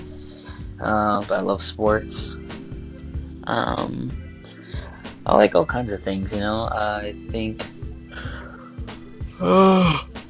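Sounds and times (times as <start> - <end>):
speech: 0.8 - 2.6, 3.5 - 4.2, 5.2 - 7.8, 9.4 - 10.1
person yawning: 9.4 - 10.1.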